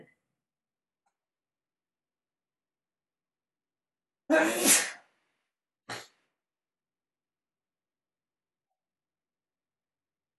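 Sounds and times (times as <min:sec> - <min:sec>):
speech: 0:04.3 - 0:04.9
person sneezing: 0:04.3 - 0:05.1, 0:05.9 - 0:06.2.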